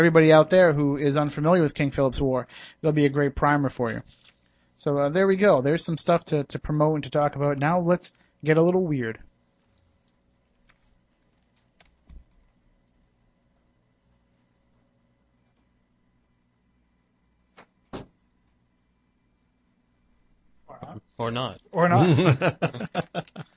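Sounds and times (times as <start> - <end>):
speech: 0.0 - 4.2, 4.8 - 9.3, 21.2 - 23.5
door closing with a thud: 17.6 - 18.2
laughter: 21.9 - 23.5.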